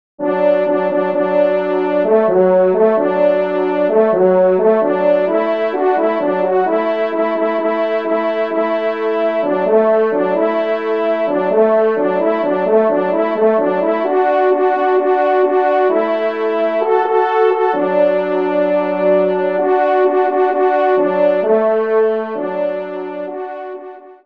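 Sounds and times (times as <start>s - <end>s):
trumpet duo playing a march: 0.2s - 24.0s.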